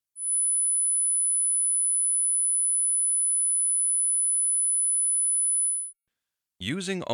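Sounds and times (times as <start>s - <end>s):
10,000 hertz sine test tone: 0.0s - 6.0s
person speaking: 6.6s - 7.1s.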